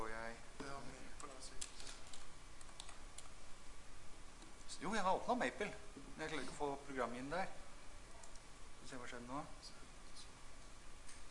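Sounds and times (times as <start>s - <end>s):
computer mouse clicking on a file: 1.2s - 3.3s, 8.2s - 8.4s
speech: 4.9s - 7.6s, 8.9s - 9.8s.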